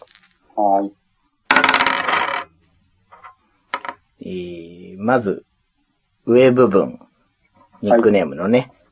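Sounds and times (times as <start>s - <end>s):
speech: 0.6s - 1.0s, 4.2s - 5.5s, 6.3s - 7.0s, 7.8s - 8.8s
six-sided die clattering across a hard tabletop: 1.5s - 2.5s, 3.2s - 4.0s.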